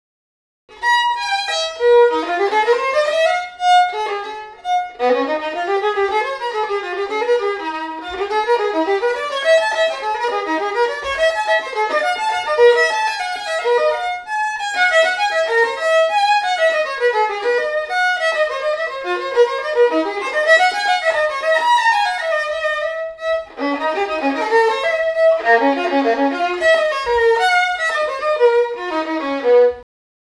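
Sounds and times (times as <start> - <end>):
violin playing a scale in natural tuning: 0.7 - 29.9.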